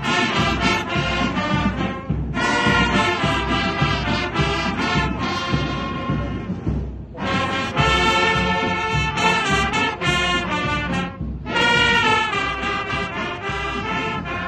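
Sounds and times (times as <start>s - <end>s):
marching band brass and drums playing in Nigeria: 0.0s - 14.4s.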